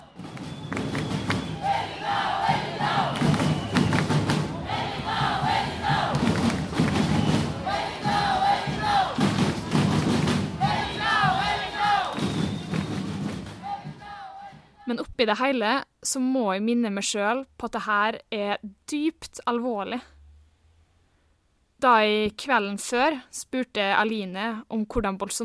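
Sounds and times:
large protest march crowd chanting in rhythmic bursts: 0.0s - 14.8s
steady thudding drumbeats at a protest march: 0.0s - 14.8s
speech: 15.2s - 20.1s, 21.8s - 25.4s.

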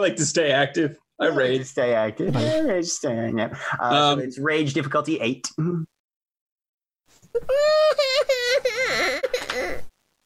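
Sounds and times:
speech: 0.0s - 5.9s
fussy baby boy crying: 7.3s - 9.9s.

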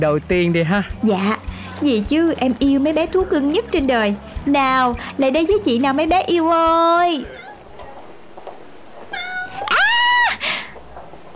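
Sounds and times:
speech: 0.0s - 7.4s
cat meowing: 7.2s - 8.2s, 9.0s - 10.5s.

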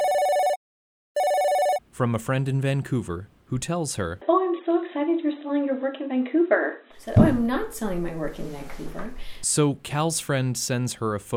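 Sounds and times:
telephone ringing with a trilling bell-like tone: 0.0s - 0.6s, 1.2s - 1.8s
speech: 2.0s - 4.4s, 5.5s - 11.3s.

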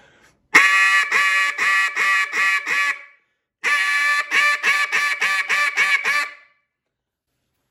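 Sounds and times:
double reed duck call blowing a high ball call: 0.5s - 6.5s.

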